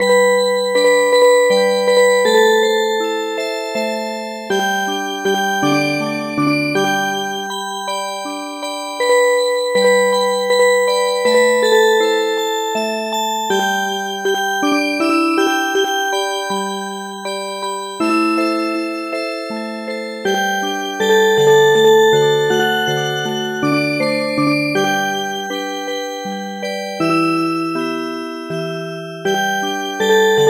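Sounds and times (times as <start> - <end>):
music box lullaby: 0.0 - 30.4.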